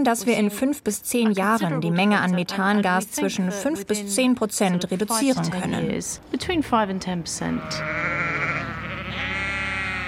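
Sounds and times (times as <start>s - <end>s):
speech: 0.0s - 8.4s
sheep bleating: 7.5s - 10.0s.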